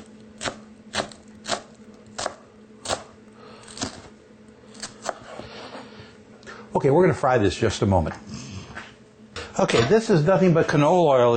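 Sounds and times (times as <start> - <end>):
knife finely chopping shallots on a board: 0.4 - 3.1
speech: 6.8 - 8.3, 9.6 - 11.3.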